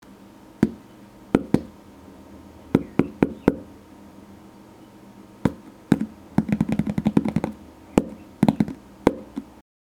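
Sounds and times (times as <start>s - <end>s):
knocking on plastic lid: 1.4s - 1.7s, 2.8s - 3.7s, 5.5s - 9.5s.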